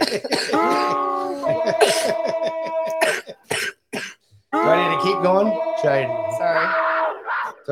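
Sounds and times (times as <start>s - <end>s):
laughter: 0.0s - 3.5s, 4.6s - 7.7s
person coughing: 0.0s - 4.2s
speech: 0.1s - 0.7s, 5.2s - 6.8s.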